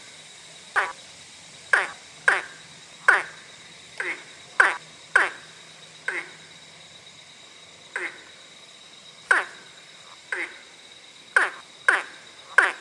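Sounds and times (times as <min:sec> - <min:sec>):
quiet background hiss: 0:00.0 - 0:12.7
ornate burrowing frog calling with knocking notes: 0:01.7 - 0:02.5, 0:03.1 - 0:03.3, 0:04.0 - 0:05.4, 0:09.3 - 0:09.5, 0:11.4 - 0:12.7.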